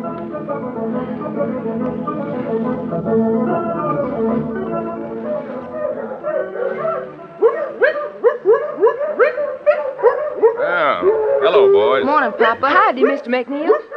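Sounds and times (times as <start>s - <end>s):
speech: 1.4s - 5.0s, 12.0s - 13.8s
litter of newborn puppies whimpering and yipping in the Piney Woods of Mississippi: 5.1s - 13.2s.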